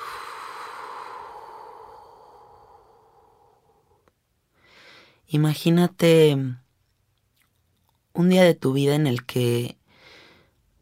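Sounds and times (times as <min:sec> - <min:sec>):
slow deep breathing during guided meditation: 0:00.0 - 0:05.2, 0:09.9 - 0:10.6
speech: 0:05.3 - 0:06.6, 0:08.2 - 0:09.8.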